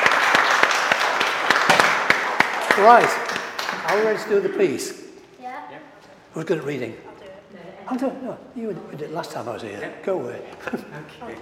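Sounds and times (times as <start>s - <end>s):
applause from clapping hands: 0.0s - 4.8s
speech: 2.8s - 3.2s, 3.9s - 5.0s, 6.3s - 7.1s, 7.9s - 11.4s.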